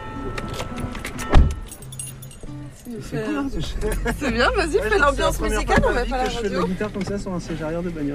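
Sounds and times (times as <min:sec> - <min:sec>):
low steady rumble from the car interior: 0:00.0 - 0:08.1
car door shutting: 0:00.3 - 0:02.5, 0:05.6 - 0:07.3
keys jingling: 0:00.4 - 0:03.1
speech: 0:02.8 - 0:08.1
voices chattering in a car: 0:02.8 - 0:08.1.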